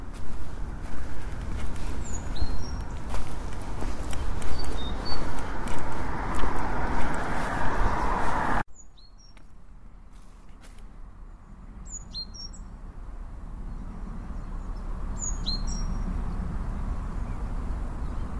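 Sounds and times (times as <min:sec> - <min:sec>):
steady low outdoor rumble: 0:00.0 - 0:08.7, 0:09.6 - 0:18.3
birds singing in high chirps and whistled phrases: 0:01.8 - 0:06.0, 0:11.8 - 0:12.7, 0:13.7 - 0:16.1.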